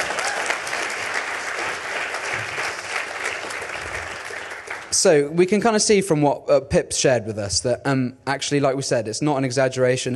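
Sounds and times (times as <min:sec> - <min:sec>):
crowd of listeners applauding a guest: 0:00.0 - 0:05.1
speech: 0:05.0 - 0:10.1.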